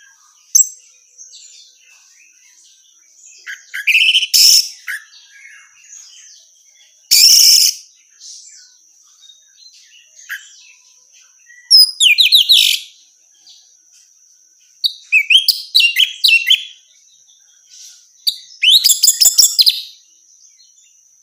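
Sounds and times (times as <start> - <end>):
female Orange-headed thrush chirping and whistling: 3.4 - 5.8, 7.1 - 7.9, 10.2 - 10.6, 11.4 - 12.9, 14.8 - 16.8, 17.7 - 20.0.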